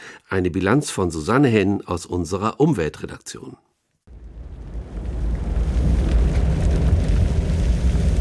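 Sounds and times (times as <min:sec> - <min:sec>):
speech: 0:00.3 - 0:03.7
roar of a large forest wildfire: 0:04.1 - 0:08.1.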